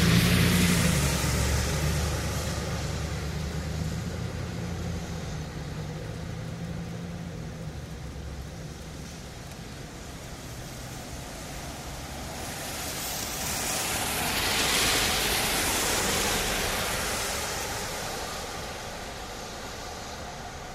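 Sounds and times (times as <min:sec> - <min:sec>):
cars passing in the rain: 0:00.0 - 0:05.6, 0:10.0 - 0:20.7
steady rain hiss: 0:00.0 - 0:20.7.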